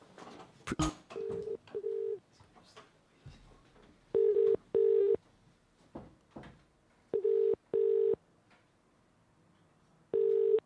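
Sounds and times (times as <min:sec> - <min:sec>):
phone number dialing tones and clicks: 0:01.1 - 0:02.2, 0:04.2 - 0:05.2, 0:07.1 - 0:08.2, 0:10.1 - 0:10.6.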